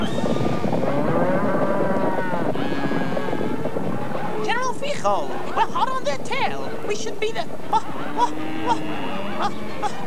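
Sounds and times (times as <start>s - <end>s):
large herd of cattle mooing and lowing: 0.0s - 3.8s, 7.9s - 10.0s
speech: 5.0s - 10.0s.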